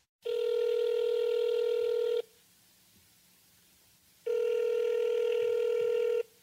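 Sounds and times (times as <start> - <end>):
buzzy electronic ringback of a call to a cell phone: 0.2 - 2.3, 4.3 - 6.3.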